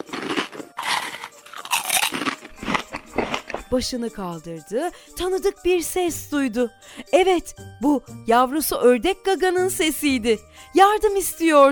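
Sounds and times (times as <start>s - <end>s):
young Parasaurolophus chewing grass, leaves and thin twigs: 0.0s - 3.7s
speech: 3.7s - 11.6s.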